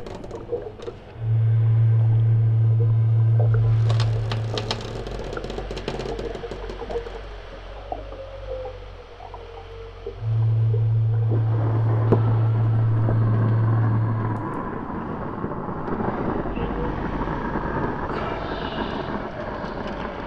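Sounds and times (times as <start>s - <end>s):
low rumble of boat engines and water: 0.0s - 20.2s
large boat horn blasts: 1.1s - 3.8s, 10.2s - 14.6s.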